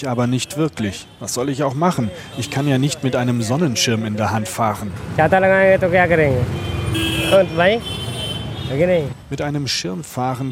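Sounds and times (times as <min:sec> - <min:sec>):
car horns tooting in busy Old Delhi traffic: 0:00.0 - 0:03.4, 0:06.4 - 0:09.0
speech: 0:00.0 - 0:08.0, 0:08.7 - 0:10.5
busy street traffic rumbling in Old Delhi India: 0:00.0 - 0:10.5.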